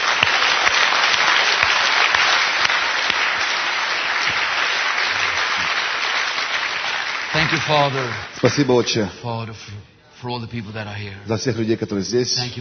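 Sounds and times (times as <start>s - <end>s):
church congregation applauding in praise: 0.0s - 9.4s
speech: 7.5s - 12.5s.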